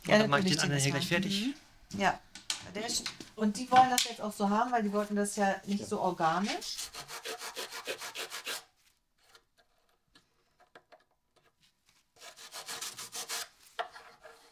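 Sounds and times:
speech: 0.1s - 7.1s
sanding wooden edges: 6.4s - 8.7s, 12.2s - 14.5s.

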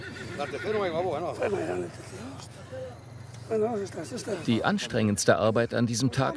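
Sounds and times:
mares and foals whinnying in a herd gathered for shearing: 0.0s - 1.8s
speech: 0.4s - 6.3s.

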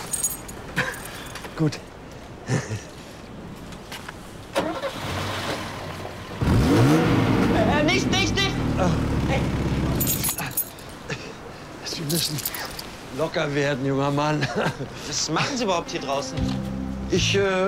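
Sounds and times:
speech: 1.6s - 1.9s, 2.5s - 2.9s, 12.1s - 17.6s
car engine cranking and starting after spark plug work: 4.6s - 10.1s
laughter: 14.3s - 15.7s.

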